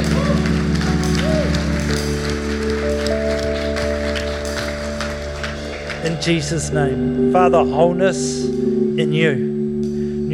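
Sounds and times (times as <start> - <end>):
room full of people clapping: 0.0 - 6.7
sustained keyboard chords: 0.0 - 10.3
speech: 6.2 - 9.5.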